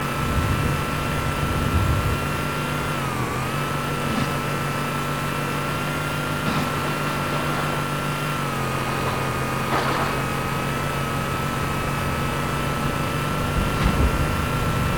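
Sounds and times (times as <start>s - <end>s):
warthog vehicle engine: 0.0s - 14.9s.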